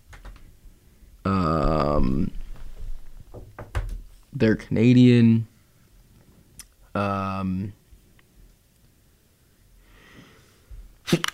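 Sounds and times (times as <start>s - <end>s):
speech: 1.2s - 2.4s, 4.4s - 5.5s, 7.0s - 7.8s
soft rustling: 1.8s - 4.3s
quiet breathing: 9.3s - 11.0s
person sneezing: 11.0s - 11.3s.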